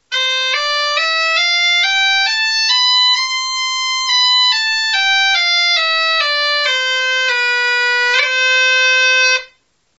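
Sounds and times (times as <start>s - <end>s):
musical scale: 0.1s - 9.6s.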